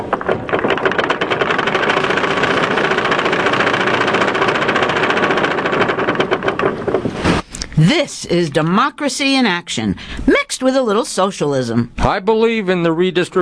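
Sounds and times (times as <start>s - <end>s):
raffle drum spinning with a mechanical rattle: 0.0s - 7.5s
speech: 7.8s - 13.4s.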